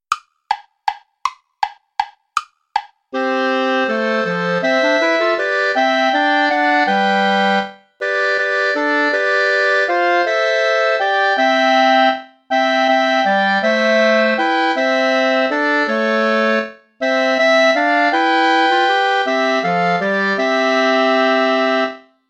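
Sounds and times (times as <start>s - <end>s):
play-along backing music without clarinet: 0.1s - 22.2s.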